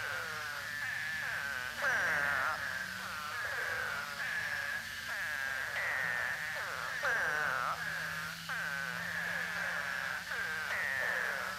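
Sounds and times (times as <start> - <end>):
Eastern spadefoots calling together: 0.0 - 11.5.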